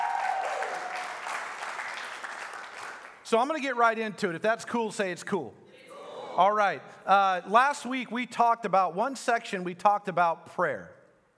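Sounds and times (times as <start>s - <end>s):
church congregation applauding during a service: 0.0s - 3.3s
speech: 3.3s - 5.6s, 6.4s - 11.0s.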